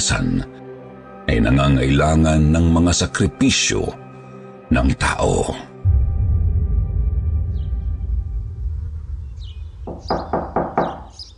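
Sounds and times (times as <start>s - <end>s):
speech: 0.0s - 0.6s, 1.3s - 4.1s, 4.7s - 5.7s
low rumbling drone: 5.8s - 11.3s
quick firm knocks on a door: 9.9s - 11.3s.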